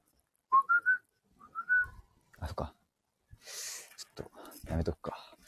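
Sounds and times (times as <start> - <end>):
person whistling a brief melodic phrase: 0.5 - 2.0
speech: 4.9 - 5.1.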